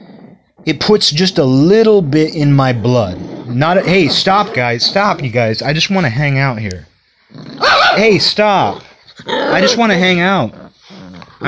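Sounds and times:
speech: 0:00.7 - 0:06.9, 0:07.6 - 0:10.6
dog barking and growling: 0:02.7 - 0:05.4, 0:07.4 - 0:11.4.

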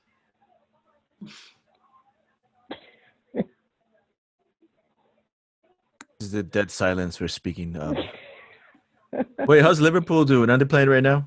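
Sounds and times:
speech: 0:01.2 - 0:01.6, 0:06.3 - 0:08.2, 0:09.5 - 0:11.2
short harsh coughs: 0:02.7 - 0:03.5, 0:07.9 - 0:08.7.

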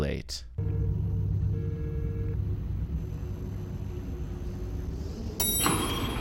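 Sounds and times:
speech: 0:00.2 - 0:00.5
low mechanical hum: 0:00.4 - 0:06.1
elevator door sliding open: 0:03.0 - 0:06.1
elevator bell ring: 0:05.4 - 0:06.1.

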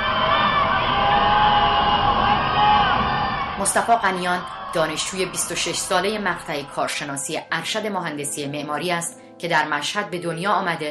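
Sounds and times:
protest crowd chanting slogans: 0:00.0 - 0:07.3
speech: 0:03.6 - 0:10.8.

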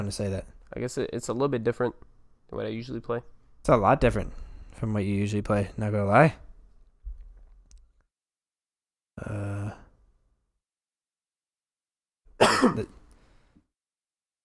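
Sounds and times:
speech: 0:00.0 - 0:06.4, 0:09.2 - 0:09.8, 0:12.6 - 0:13.0
person coughing into the microphone: 0:12.4 - 0:13.0
throaty voiced throat clearing: 0:12.4 - 0:13.0.

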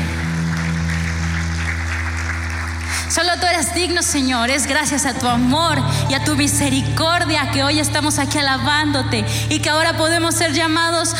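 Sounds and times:
church congregation applause: 0:00.0 - 0:04.8
speech: 0:03.1 - 0:11.1.

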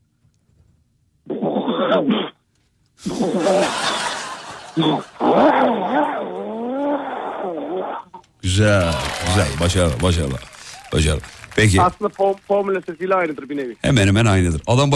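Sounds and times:
speech: 0:01.9 - 0:02.4, 0:03.0 - 0:03.9, 0:04.8 - 0:05.4, 0:08.6 - 0:14.9
laughter: 0:03.1 - 0:06.0, 0:08.8 - 0:10.3
person vocally imitating a chainsaw running: 0:04.8 - 0:07.9.

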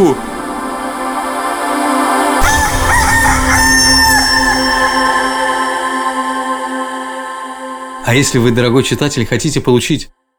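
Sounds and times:
rooster crowing: 0:00.2 - 0:07.0
speech: 0:08.1 - 0:10.2.

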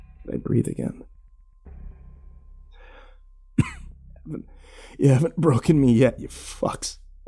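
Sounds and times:
speech: 0:00.4 - 0:01.2, 0:04.3 - 0:07.0
harsh raspy coughing: 0:03.6 - 0:04.4.

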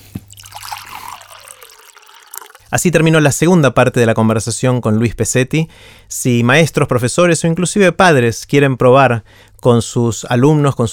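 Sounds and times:
water being poured into a glass for drinking: 0:00.2 - 0:02.8
speech: 0:02.7 - 0:10.9.

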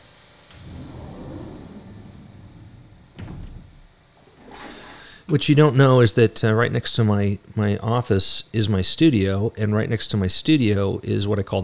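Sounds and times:
steady low mechanical rumble: 0:00.0 - 0:07.6
office door shutting with a thud: 0:00.5 - 0:05.1
speech: 0:05.3 - 0:11.6.

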